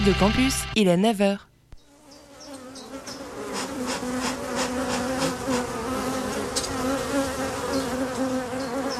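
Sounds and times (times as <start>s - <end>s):
speech: 0.0s - 1.5s
honeybees buzzing around a hive: 1.8s - 8.9s.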